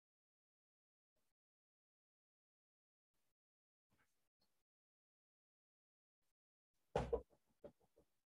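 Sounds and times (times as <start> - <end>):
loud knock on a door: 7.0 - 7.8.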